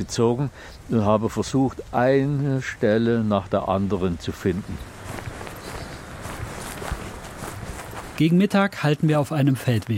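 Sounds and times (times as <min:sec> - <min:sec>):
speech: 0:00.0 - 0:04.9, 0:08.2 - 0:09.9
footsteps of people walking along a forest edge: 0:04.4 - 0:08.6.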